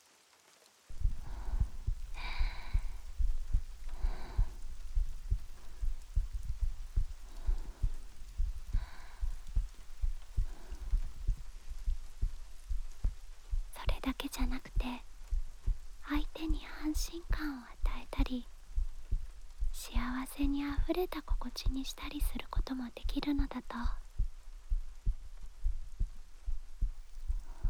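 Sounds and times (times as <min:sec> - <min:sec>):
faint airy swishes: 0:00.9 - 0:19.6
heartbeat in low double beats: 0:00.9 - 0:27.6
speech: 0:17.0 - 0:18.5, 0:20.4 - 0:24.0.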